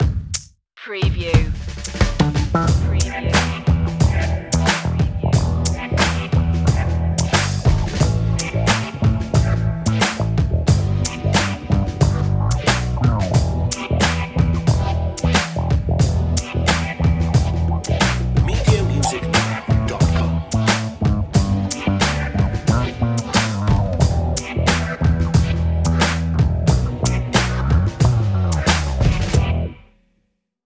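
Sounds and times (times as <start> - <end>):
crazy funky bass: 1.3 - 29.8.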